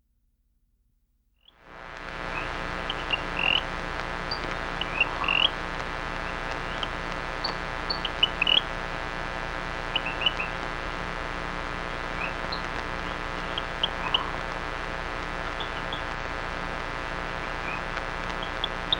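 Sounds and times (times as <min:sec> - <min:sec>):
steady low hum: 0:01.6 - 0:18.9
Rio Grande chirping frog giving short high chirps and upslurred squeaks: 0:02.2 - 0:08.8, 0:09.8 - 0:10.6, 0:11.9 - 0:18.9.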